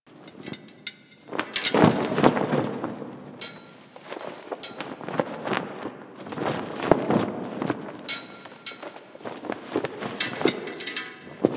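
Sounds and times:
flag flapping: 0.1s - 11.5s.

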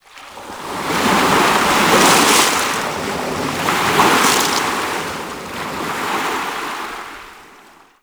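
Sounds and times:
ocean wave crashing: 0.6s - 6.7s.

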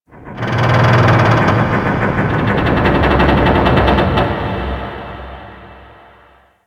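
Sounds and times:
large underwater metal creaks in the ocean: 0.4s - 4.8s.

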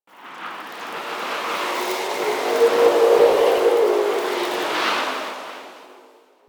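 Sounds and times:
low landscape wind gust: 0.2s - 6.4s.

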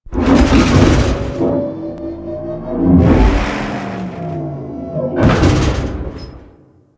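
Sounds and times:
ship external machinery: 0.0s - 6.9s.

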